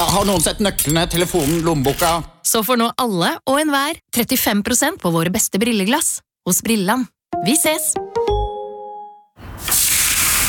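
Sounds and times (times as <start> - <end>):
speech: 0.1 - 8.0
barbecue grill sizzling as burgers cook: 9.5 - 10.4.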